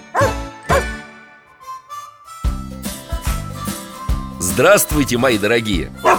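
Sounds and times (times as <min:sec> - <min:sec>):
dog barking: 0:00.1 - 0:00.9
speech: 0:04.6 - 0:06.1.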